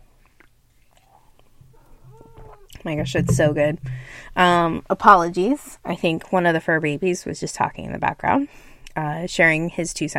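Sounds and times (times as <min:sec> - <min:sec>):
person sipping a drink with soft slurping: 0:00.2 - 0:02.7
speech: 0:02.8 - 0:10.1.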